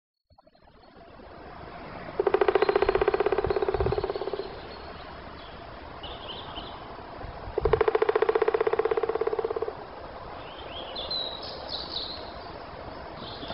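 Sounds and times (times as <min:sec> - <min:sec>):
Black woodpecker drumming: 0:02.2 - 0:05.0, 0:07.6 - 0:09.9.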